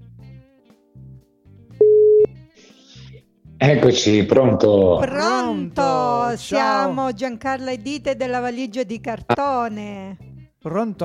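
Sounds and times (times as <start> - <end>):
telephone ringback tone on an outgoing call: 1.8 - 2.3
speech: 3.6 - 11.0.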